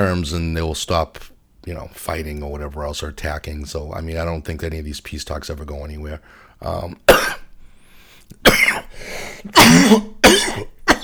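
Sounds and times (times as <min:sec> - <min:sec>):
speech: 0:00.0 - 0:07.4, 0:09.4 - 0:10.7
wheezy breaths: 0:06.2 - 0:06.6, 0:07.6 - 0:09.6
harsh raspy smoker's cough: 0:07.1 - 0:07.5, 0:08.4 - 0:11.0.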